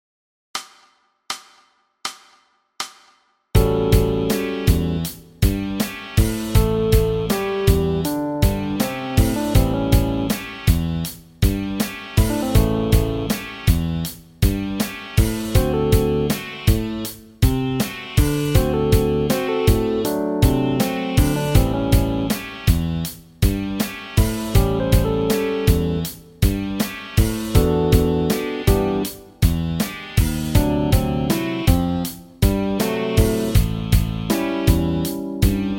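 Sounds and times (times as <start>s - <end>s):
bass: 3.6s - 35.7s.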